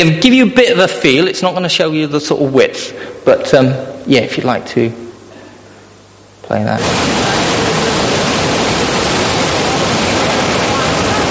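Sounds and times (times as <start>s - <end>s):
speech: 0.0s - 5.0s, 6.5s - 7.2s
rushing floodwater of a river: 6.8s - 11.2s.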